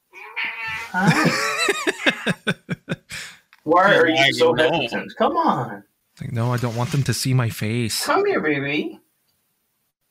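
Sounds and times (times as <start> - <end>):
cat meowing and yowling insistently: 0.1 - 1.0, 1.8 - 2.4
laughter: 0.8 - 3.3
speech: 0.9 - 2.7, 3.7 - 9.0.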